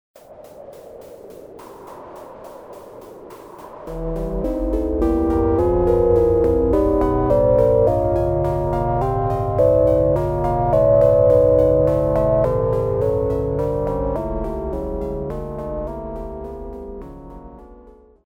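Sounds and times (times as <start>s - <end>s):
electronic arpeggio: 3.9s - 17.8s.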